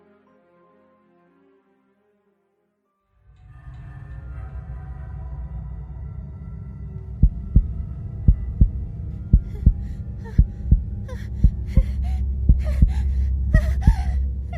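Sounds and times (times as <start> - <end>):
loud heartbeat: 7.2 - 14.5
heavy ragged breathing: 9.1 - 14.5.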